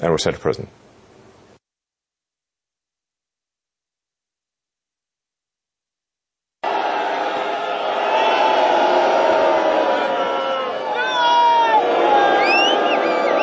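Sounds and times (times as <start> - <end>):
speech: 0.0 - 0.9
massive crowd booing at a rally: 6.6 - 13.4
people shouting: 6.6 - 13.4
sharp whistles: 10.8 - 13.4.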